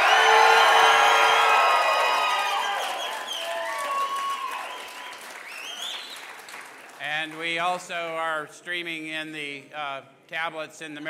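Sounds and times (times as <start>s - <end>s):
crowd yelling and cheering a shout-out: 0.0s - 6.4s
speech: 7.6s - 11.0s.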